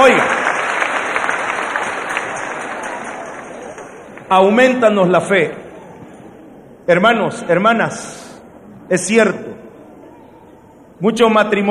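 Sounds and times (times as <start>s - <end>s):
church congregation applauding during a Sunday service: 0.0s - 4.6s
speech: 4.3s - 5.6s, 6.9s - 8.3s, 8.9s - 9.6s, 11.0s - 11.6s.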